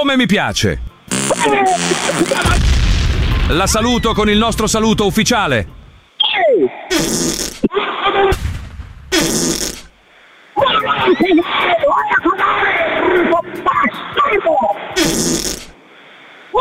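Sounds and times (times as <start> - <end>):
speech: 0.0 - 2.8, 3.5 - 5.8, 6.4 - 8.4, 9.2 - 9.7, 10.6 - 15.6
loud raspy fart blasts on a radio show: 1.1 - 2.6, 6.9 - 7.7, 9.1 - 9.9, 15.0 - 15.8.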